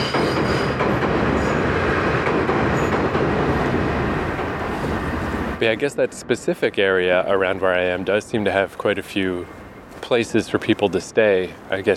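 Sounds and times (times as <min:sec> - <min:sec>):
faint metallic squeals of train: 0:00.0 - 0:00.8
train crossing a rusty bridge: 0:00.0 - 0:11.9
speech: 0:05.6 - 0:11.9.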